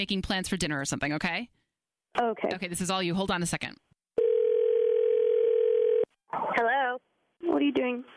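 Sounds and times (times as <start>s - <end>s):
speech: 0.0s - 3.9s, 6.3s - 8.1s
continuous telephone dial tone: 4.2s - 6.1s.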